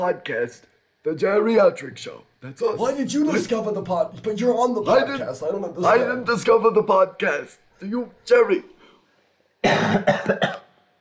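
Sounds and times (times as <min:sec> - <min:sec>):
speech: 0:00.0 - 0:08.7, 0:09.6 - 0:10.6
harsh wet cough bringing up phlegm: 0:09.6 - 0:10.8.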